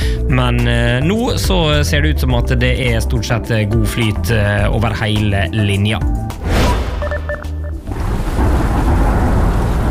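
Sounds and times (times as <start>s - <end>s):
speech: 0.3s - 6.7s
electronic beeping tones: 6.7s - 7.8s
deep rumble: 7.8s - 9.9s
steady loud rain pouring down: 7.8s - 9.9s.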